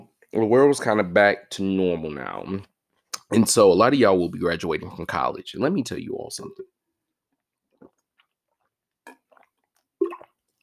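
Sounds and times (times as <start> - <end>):
speech: 0.3 - 2.7, 3.3 - 6.8
person drinking water with wet gulps: 6.5 - 10.6.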